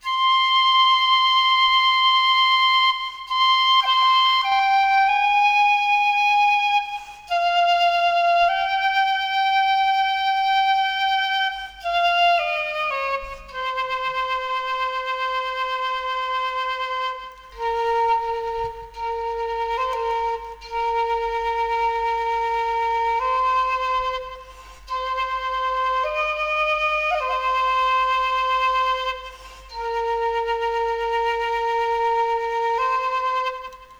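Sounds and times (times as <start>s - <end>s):
start music: 0.0s - 33.9s.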